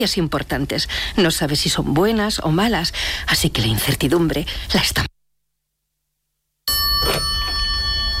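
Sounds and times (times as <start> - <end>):
speech: 0.0 - 5.1
telephone ringing with a metallic tone: 6.7 - 8.1.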